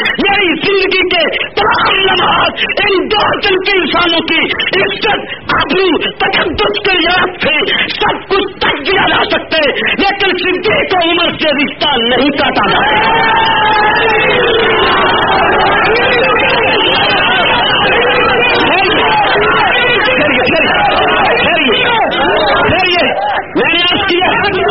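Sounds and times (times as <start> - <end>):
laughter: 0.0 - 24.6
speech: 3.6 - 15.2
large crowd chanting political slogans: 12.6 - 24.6
people shouting: 12.6 - 24.6.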